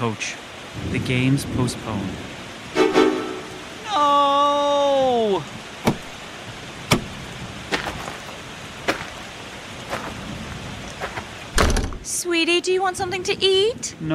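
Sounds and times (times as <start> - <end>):
speech: 0.0 - 2.9, 12.4 - 14.1
steady rain falling: 0.0 - 14.1
distant thunder: 0.7 - 3.8.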